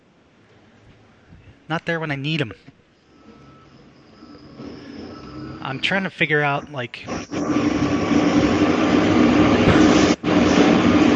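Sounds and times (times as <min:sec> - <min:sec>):
speech: 0:01.7 - 0:02.8, 0:05.7 - 0:08.2
truck engine roar: 0:03.1 - 0:11.1.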